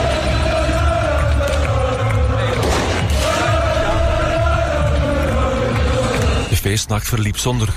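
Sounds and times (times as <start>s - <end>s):
dense crowd cheering and chanting for a football championship in Sint-Gilles: 0.0s - 7.7s
fireworks crackling and thumping: 2.5s - 3.6s
speech: 6.7s - 7.7s.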